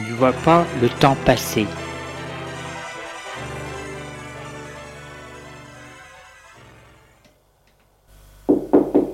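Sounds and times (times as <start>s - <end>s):
gentle music: 0.0s - 7.3s
speech: 0.2s - 1.8s
firm knocks on a door: 8.5s - 9.1s.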